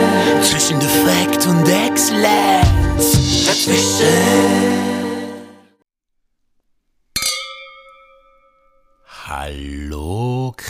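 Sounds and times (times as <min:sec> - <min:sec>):
speech: 0:00.6 - 0:05.0
glasses clinking in a toast: 0:07.2 - 0:09.1
ringing sound: 0:07.2 - 0:09.1.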